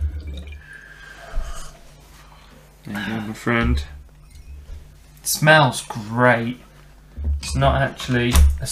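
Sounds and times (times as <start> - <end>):
rum dripping from a bar optic: 0.0 - 0.9
speech: 2.8 - 4.0, 5.3 - 6.7, 7.4 - 8.7.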